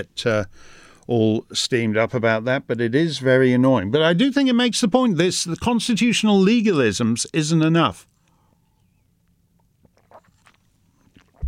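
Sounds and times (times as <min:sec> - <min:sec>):
speech: 0:00.0 - 0:08.1
person sipping water: 0:09.8 - 0:11.4
soft wet mouth clicks: 0:09.8 - 0:11.4
swallow: 0:09.8 - 0:11.4.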